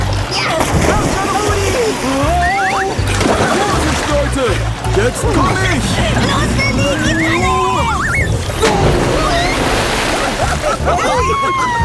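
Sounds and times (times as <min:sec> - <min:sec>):
water splashing and sloshing in a pool: 0:00.0 - 0:11.8
laughter: 0:01.5 - 0:11.8
speech: 0:05.0 - 0:07.1
excited voices calling out faintly: 0:05.1 - 0:09.8, 0:10.7 - 0:11.8.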